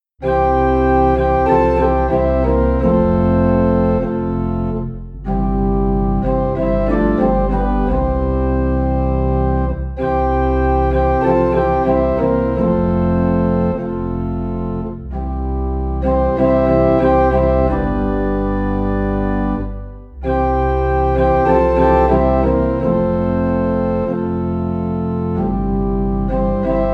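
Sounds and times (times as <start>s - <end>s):
low organ note in C: 0.2s - 26.9s.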